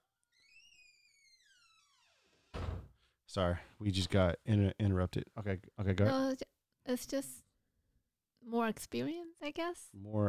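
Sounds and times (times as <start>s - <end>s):
creaky door hinge squeal: 0.3s - 2.9s
door swinging shut with a thud: 1.2s - 3.0s
speech: 3.4s - 7.5s, 8.4s - 10.2s.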